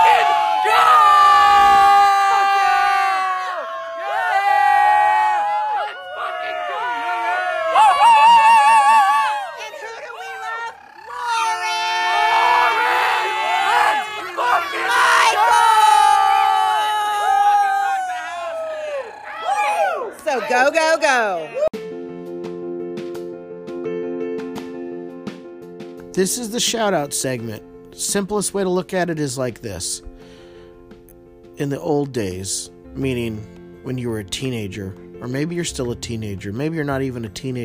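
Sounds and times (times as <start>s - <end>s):
packed concert crowd in San Francisco California cheering after a rock show: 0.0s - 21.8s
speech: 26.2s - 30.4s, 31.6s - 37.6s.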